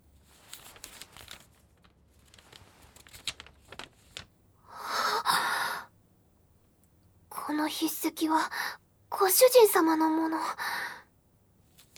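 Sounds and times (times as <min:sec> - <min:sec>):
paper letter rustling and crinkling while being opened and unfolded: 0:00.2 - 0:04.3
speech: 0:07.6 - 0:10.7.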